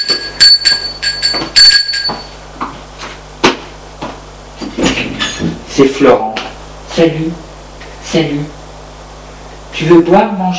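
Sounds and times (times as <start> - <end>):
doorbell chiming: 0.0 - 2.4
speech: 5.8 - 6.3, 7.0 - 7.4, 8.1 - 8.6, 9.8 - 10.5.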